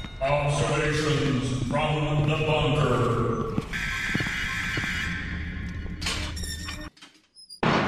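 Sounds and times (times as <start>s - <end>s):
speech: 0.2s - 3.5s
worn door creaking and scraping open: 3.9s - 7.8s.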